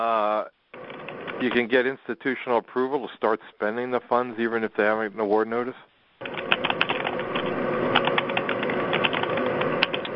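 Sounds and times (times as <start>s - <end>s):
speech: 0.0s - 0.6s, 1.4s - 6.5s
constant hiss of background noise: 0.0s - 6.3s
rapid irregular mechanical clicking: 6.2s - 10.1s.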